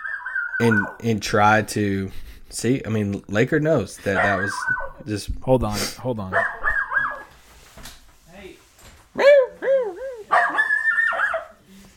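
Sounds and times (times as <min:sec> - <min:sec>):
small dog whining: 0:00.0 - 0:01.0, 0:04.2 - 0:05.0, 0:06.4 - 0:07.3, 0:09.2 - 0:11.6
speech: 0:00.6 - 0:06.6
small dog giving shrill high-pitched barks and yips: 0:06.4 - 0:07.3, 0:09.2 - 0:11.6.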